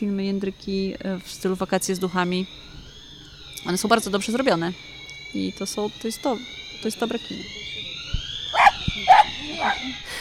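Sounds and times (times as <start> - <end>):
speech: 0.0 - 2.8, 3.6 - 7.8, 9.0 - 10.1
steady high-pitched alarm tone: 1.6 - 10.1
dog barking: 8.6 - 10.0.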